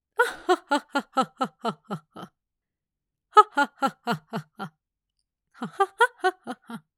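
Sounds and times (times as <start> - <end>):
empress laughing in a game: 0.2 - 2.3, 3.4 - 4.7, 5.6 - 6.9.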